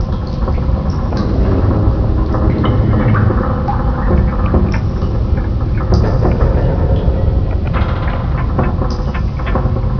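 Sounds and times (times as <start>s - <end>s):
creepy tunnel ambience: 0.0s - 9.9s.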